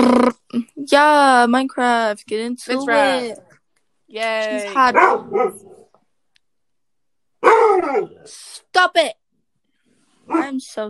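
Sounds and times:
speech: 0.0s - 3.5s, 4.1s - 5.7s, 7.4s - 9.2s, 10.3s - 10.8s
dog barking: 4.9s - 5.9s, 7.4s - 8.3s, 10.3s - 10.6s.

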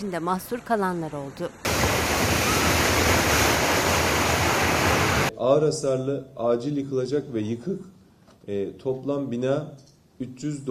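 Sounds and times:
speech: 0.0s - 2.4s, 5.4s - 10.7s
sea surge rushing over land: 1.6s - 5.3s.

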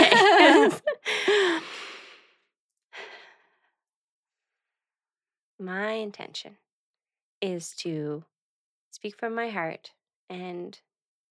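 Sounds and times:
laughter: 0.0s - 1.7s
nervous person taking a deep breath with voiced sigh and exhale: 1.0s - 2.4s
speech: 5.6s - 6.6s, 7.4s - 8.3s, 8.9s - 10.9s.

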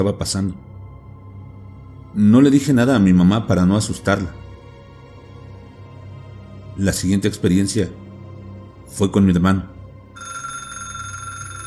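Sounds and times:
speech: 0.0s - 0.7s, 2.1s - 4.4s, 6.8s - 8.0s, 8.9s - 9.7s
telephone ringing with a bright electronic tone: 10.2s - 11.6s.

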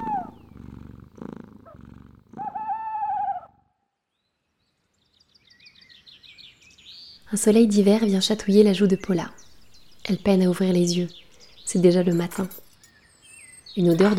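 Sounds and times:
large cat purring in deep rumbling bursts: 0.0s - 2.6s
faint high bird chirps: 2.4s - 14.1s
speech: 7.3s - 9.4s, 10.1s - 12.6s, 13.8s - 14.1s.

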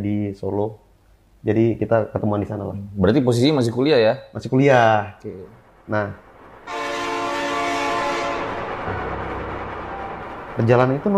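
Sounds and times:
speech: 0.0s - 0.8s, 1.4s - 6.2s, 10.6s - 11.1s
economy-class passenger train departing from Pasar Senen: 4.7s - 11.1s
passenger train horn blast: 6.7s - 10.4s.

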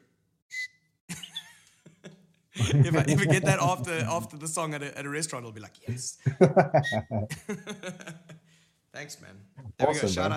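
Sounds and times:
short clear high-pitched whistle: 0.5s - 0.9s
laughter: 1.1s - 4.4s, 5.9s - 8.5s
speech: 2.7s - 8.3s, 9.0s - 10.3s.

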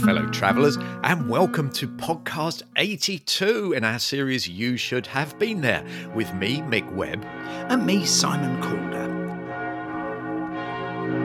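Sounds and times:
speech: 0.0s - 9.1s
church bells ringing: 4.9s - 11.2s.

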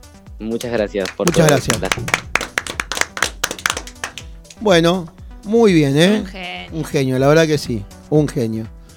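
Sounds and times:
speech: 0.4s - 2.2s, 4.6s - 8.8s
hands clapping: 0.5s - 5.2s.

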